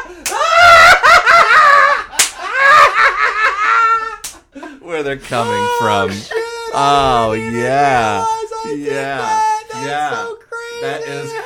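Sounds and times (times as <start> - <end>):
laughter: 0.0 - 11.4
sharp hand slaps: 0.2 - 0.4, 2.1 - 2.5
speech: 5.0 - 11.4.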